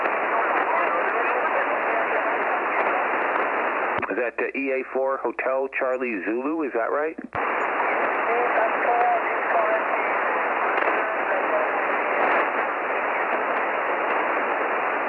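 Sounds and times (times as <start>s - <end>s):
faint distant voice of an amateur radio station: 0.0s - 3.2s, 4.0s - 7.3s, 8.2s - 12.4s
dense hissing shortwave static: 0.0s - 15.0s
speech: 4.2s - 7.6s.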